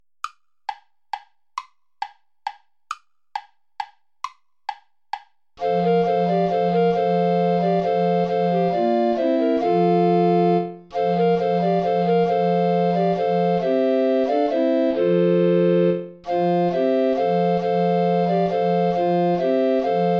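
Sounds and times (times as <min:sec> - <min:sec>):
play-along accompaniment music without soprano recorder: 0:05.6 - 0:20.1.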